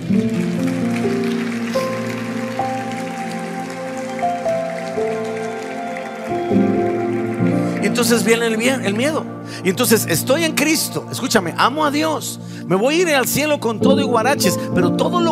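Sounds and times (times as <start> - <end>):
large crowd applauding: 0.0 - 11.0
sustained keyboard chords: 0.0 - 15.3
speech: 7.9 - 15.3.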